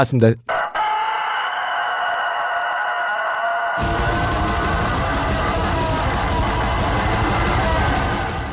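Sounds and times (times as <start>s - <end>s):
speech: 0.0s - 0.6s
chicken crowing and squawking as lead vocals in a heavy metal song: 0.5s - 8.3s
distorted guitars in a heavy metal song: 3.8s - 8.5s
rapid pounding drums in a heavy metal song: 3.8s - 8.5s.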